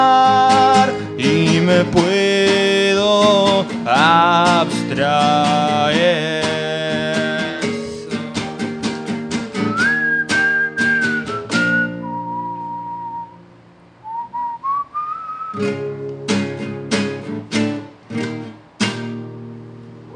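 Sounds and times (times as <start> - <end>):
backing instruments playing rhythmic chords: 0.0 - 19.0
whistling the melody of a song: 9.6 - 16.8.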